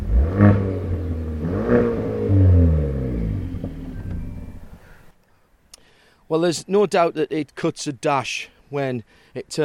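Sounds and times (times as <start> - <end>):
Hyundai i30N Performance Fastback engine revving: 0.0 - 4.8
Hyundai i30N Performance Fastback deep throaty exhaust rumble and idle burble: 0.0 - 5.0
speech: 6.3 - 9.6.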